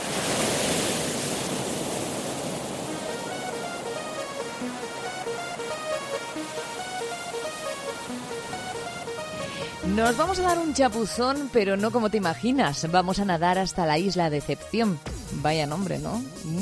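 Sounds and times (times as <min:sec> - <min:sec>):
ocean surf breaking waves: 0:00.0 - 0:11.5
soft sustained musical tones: 0:03.0 - 0:11.5
speech: 0:09.9 - 0:16.6.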